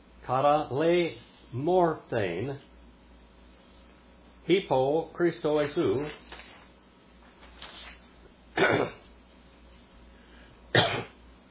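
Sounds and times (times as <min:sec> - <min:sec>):
speech: 0:00.3 - 0:02.7, 0:04.5 - 0:06.4
person coughing: 0:08.6 - 0:09.1, 0:10.7 - 0:11.2
throaty rasps and throat clearing: 0:08.6 - 0:09.1, 0:10.7 - 0:11.2.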